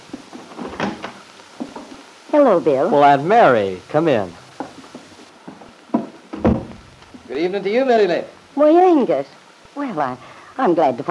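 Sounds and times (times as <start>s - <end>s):
speech: 2.3s - 4.4s, 7.4s - 11.0s
knocking on a wooden cabin door: 6.0s - 6.8s.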